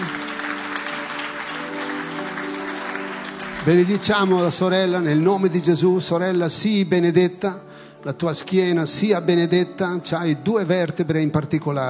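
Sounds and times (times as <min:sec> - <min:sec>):
audience applause: 0:00.0 - 0:04.7
speech: 0:03.6 - 0:11.8.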